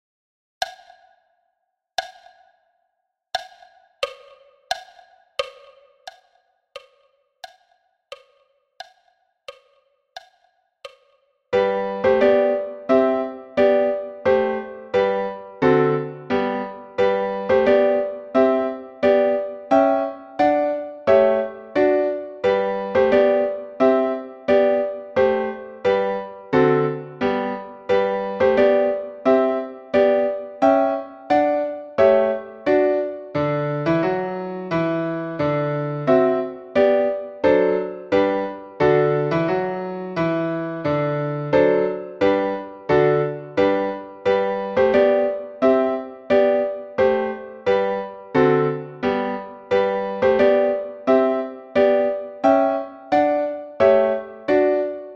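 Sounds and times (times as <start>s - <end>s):
piano march at 88 bpm: 11.6s - 55.1s.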